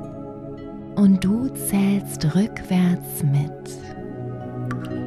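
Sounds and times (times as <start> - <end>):
speech: 1.0 - 4.0
water drops plinking into a puddle: 4.7 - 4.9.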